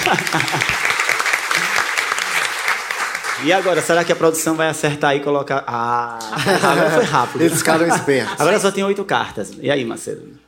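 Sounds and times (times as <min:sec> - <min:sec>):
laughter: 0:00.0 - 0:01.8, 0:06.1 - 0:08.6
audience clapping: 0:00.0 - 0:04.8
speech: 0:00.1 - 0:00.8, 0:03.4 - 0:10.4.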